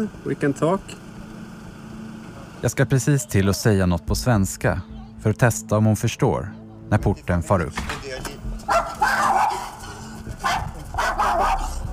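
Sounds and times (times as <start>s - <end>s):
speech: 0.0s - 1.0s, 2.6s - 8.3s
angry dog on a leash barking and snarling: 8.7s - 11.9s.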